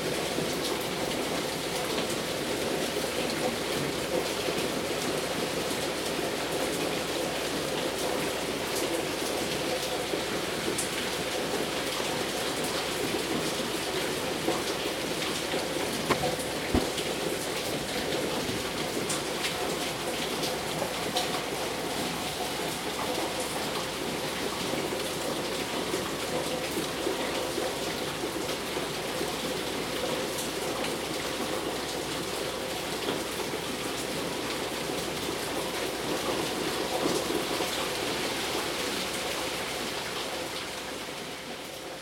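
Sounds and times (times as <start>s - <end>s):
heavy rain pouring during a storm: 0.0s - 42.0s
sharp knock: 16.1s - 17.0s.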